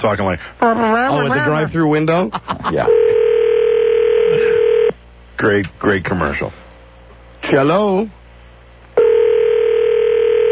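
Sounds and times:
speech: 0.0 - 3.2, 5.4 - 6.6, 7.5 - 8.2
telephone tone on an outgoing call: 2.9 - 4.9, 9.0 - 10.4.

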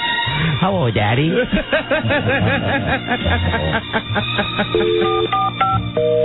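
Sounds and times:
speech: 0.6 - 6.2
chirpy giggling voices: 1.2 - 5.3
electronic telephone dialing tones: 4.8 - 6.2.

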